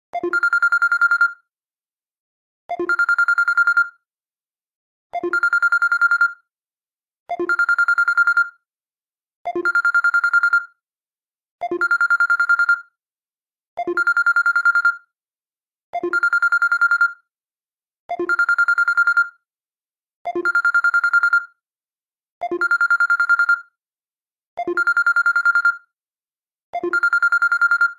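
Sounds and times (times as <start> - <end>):
Samsung Galaxy A7 original ringtone: 0.2 - 1.4, 2.8 - 4.0, 5.2 - 6.4, 7.4 - 8.6, 9.6 - 10.8, 11.7 - 12.9, 13.9 - 15.1, 16.0 - 17.2, 18.2 - 19.4, 20.3 - 21.6, 22.5 - 23.7, 24.6 - 25.9, 26.8 - 27.9.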